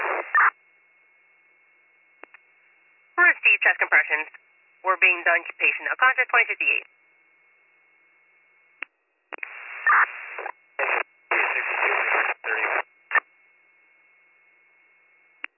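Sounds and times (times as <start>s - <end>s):
garbled radio transmission breaking up into static: 0.0s - 0.5s, 3.2s - 6.8s, 9.4s - 13.2s
speech: 3.6s - 7.0s
sharp radio clicks: 9.4s - 13.2s.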